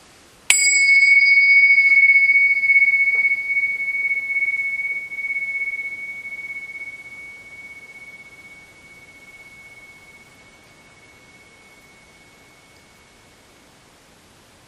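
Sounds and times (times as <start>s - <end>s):
single meditation bell ringing in a quiet room: 0.5s - 13.4s.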